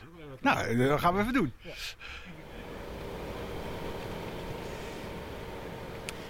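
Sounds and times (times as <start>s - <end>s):
speech: 0.3s - 2.3s
faint electric car motor hum with airy hiss: 2.4s - 6.2s.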